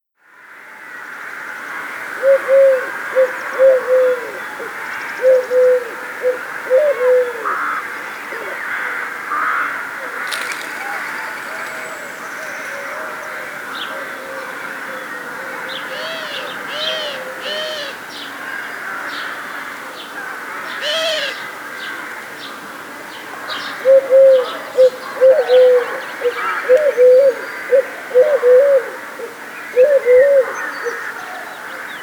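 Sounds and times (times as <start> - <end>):
collared dove birdsong: 2.2 - 7.5, 10.1 - 18.0, 23.5 - 32.0.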